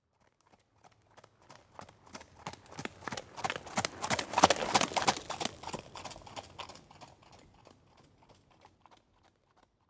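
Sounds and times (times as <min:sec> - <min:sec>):
horse cantering by on gravel: 0:02.4 - 0:08.8.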